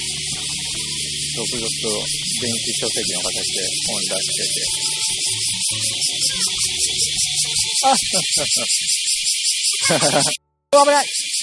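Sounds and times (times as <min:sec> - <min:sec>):
dying cicada buzzing: 0:00.0 - 0:11.4
man talking quietly: 0:01.4 - 0:05.1, 0:07.8 - 0:08.7
speech: 0:01.4 - 0:09.0, 0:09.9 - 0:11.3
man laughing: 0:02.4 - 0:05.0, 0:07.8 - 0:08.8, 0:09.8 - 0:10.4.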